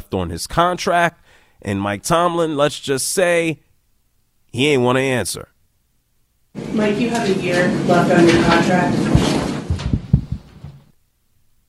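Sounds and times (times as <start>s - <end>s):
room noise hiss: 0.0s - 11.6s
speech: 0.1s - 3.6s, 4.5s - 5.5s, 6.6s - 9.3s
footsteps of someone walking away from a press conference: 6.6s - 10.9s.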